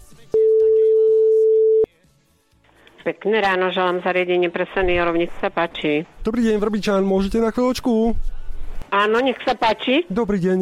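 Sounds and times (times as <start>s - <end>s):
telephone line tone while placing a call: 0.4s - 1.9s
speech: 3.1s - 10.6s.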